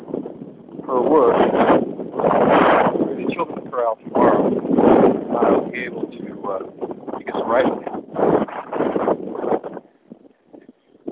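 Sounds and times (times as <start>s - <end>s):
brisk outdoor wind buffeting a microphone: 0.0s - 11.1s
speech: 0.9s - 1.9s, 3.8s - 8.0s.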